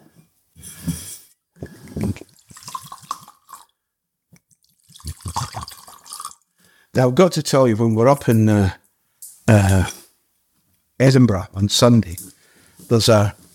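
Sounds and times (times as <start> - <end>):
water pouring into a glass: 1.9 - 3.7, 4.6 - 6.5
speech: 7.0 - 8.8, 9.5 - 10.0, 11.0 - 12.3, 12.9 - 13.4.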